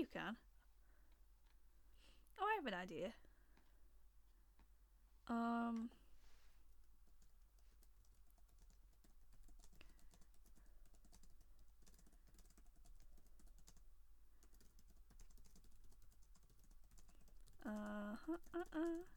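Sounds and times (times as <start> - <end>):
speech: 0.0 - 0.5, 2.4 - 3.3, 5.3 - 6.0, 17.6 - 19.1
typing on a computer keyboard: 7.1 - 19.1.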